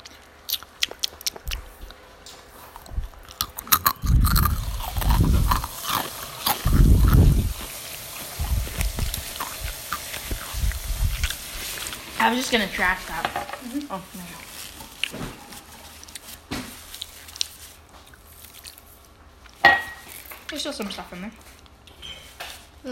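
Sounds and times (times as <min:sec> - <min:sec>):
soft mouth sounds: 0:00.0 - 0:12.0
crunching and chewing of rolled tortilla chips: 0:00.0 - 0:22.0
speech: 0:12.3 - 0:14.5, 0:20.6 - 0:21.6.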